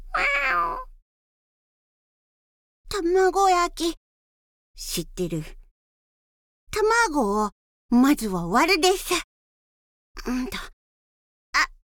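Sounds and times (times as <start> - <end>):
stray cat meowing: 0.0 - 0.9
speech: 3.0 - 4.0, 4.8 - 5.6, 6.7 - 9.3, 10.2 - 10.7.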